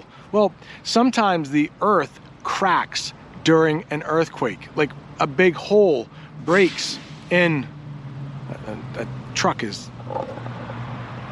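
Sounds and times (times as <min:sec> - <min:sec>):
broadband road noise: 0:00.0 - 0:11.3
truck passing outside with low engine rumble: 0:00.0 - 0:11.3
speech: 0:00.3 - 0:07.8, 0:08.5 - 0:10.6.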